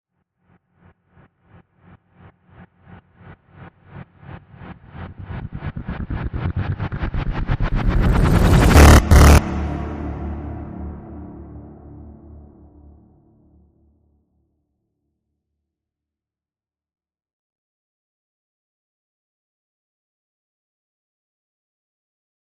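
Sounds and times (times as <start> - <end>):
distorted rise hit: 4.8 - 12.5.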